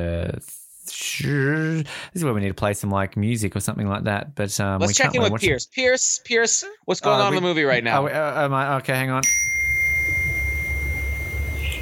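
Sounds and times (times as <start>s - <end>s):
speech: 0.0s - 9.8s
bright ding: 9.2s - 11.8s
high-pitched electronic beep tone: 9.2s - 11.8s.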